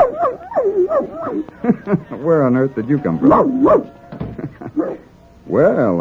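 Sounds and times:
small puppy yipping and whimpering: 0.0 - 1.5, 3.2 - 4.0
laughter: 1.0 - 5.1
speech: 1.6 - 4.0, 4.8 - 5.9.

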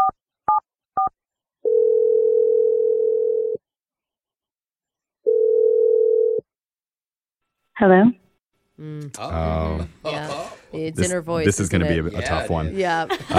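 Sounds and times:
steady mid-pitched telephone ringing tone: 1.6 - 3.6, 5.3 - 6.4
speech: 7.8 - 8.2, 8.8 - 13.3
laughter: 9.2 - 13.3.

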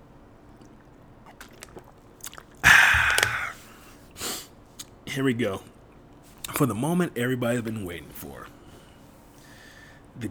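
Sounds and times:
person gulping water: 0.2 - 4.0
speech: 5.2 - 5.8, 6.6 - 8.6.

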